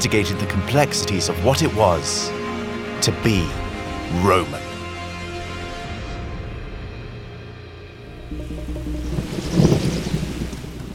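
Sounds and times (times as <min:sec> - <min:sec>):
speech: 0:00.0 - 0:02.4, 0:03.0 - 0:04.6
steady rain in a heavy tropical storm: 0:08.1 - 0:10.9.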